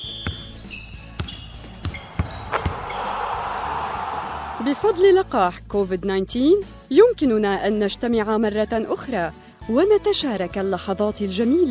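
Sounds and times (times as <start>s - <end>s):
basketball bouncing on a hard court during a game: 0.0s - 3.0s
sharp sneaker squeaks: 0.0s - 3.2s
crowd noise: 2.0s - 5.1s
speech: 4.6s - 11.6s.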